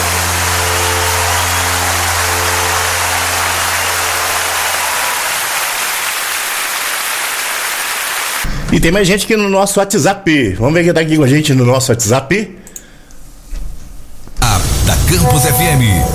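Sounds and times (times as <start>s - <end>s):
loud dense applause of many hands clapping: 0.0s - 8.5s
speech: 8.7s - 12.6s, 15.2s - 16.1s.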